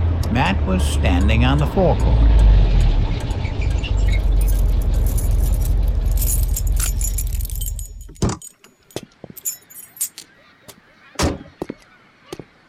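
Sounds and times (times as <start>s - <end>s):
car engine rumbling pulling into a gas station: 0.0s - 8.5s
speech: 0.4s - 2.6s
keys jangling: 4.2s - 10.2s.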